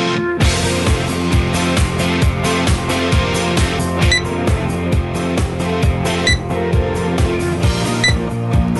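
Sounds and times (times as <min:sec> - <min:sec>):
loud rhythmic music with a steady bass beat: 0:00.2 - 0:08.7
checkout barcode scanner beeping at cash register: 0:04.1 - 0:04.3, 0:06.3 - 0:06.5, 0:08.0 - 0:08.2.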